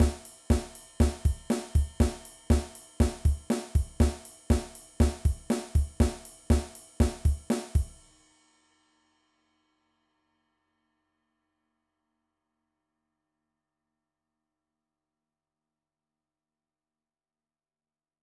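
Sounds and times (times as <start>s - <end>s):
Motown drum beat: 0.0s - 8.0s.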